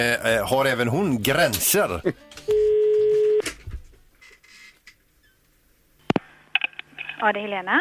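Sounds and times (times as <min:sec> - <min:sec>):
speech: 0:00.0 - 0:02.5, 0:07.2 - 0:07.7
ringback tone from an outgoing phone call: 0:02.4 - 0:03.4.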